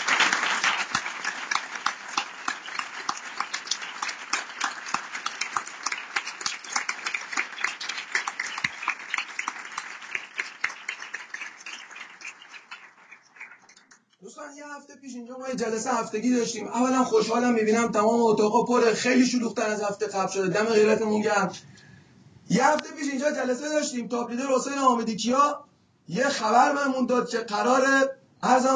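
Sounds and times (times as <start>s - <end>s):
crowd of many hands clapping: 0.0s - 14.1s
speech: 14.5s - 21.7s, 22.6s - 28.7s.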